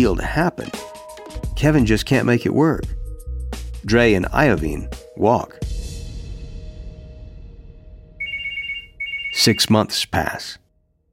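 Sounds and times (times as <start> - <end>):
speech: 0.0 - 0.9, 1.6 - 3.0, 3.8 - 5.7, 9.4 - 10.6
telephone ringing with a warbling electronic trill: 8.2 - 9.8.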